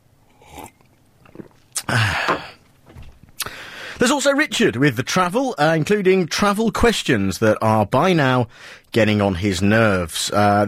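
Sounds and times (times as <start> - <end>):
slurping sip of hot tea: 0.3 - 2.6
soft mouth and cup noises: 0.3 - 2.6
speech: 1.9 - 2.2, 4.0 - 10.6.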